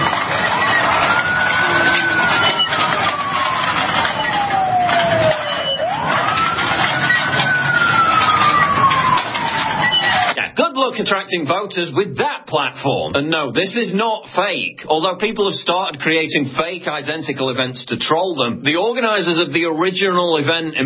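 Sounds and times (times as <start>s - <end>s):
ambulance siren wailing: 0.0s - 10.6s
dense rumble of traffic noise: 0.0s - 20.8s
speech: 11.0s - 20.8s.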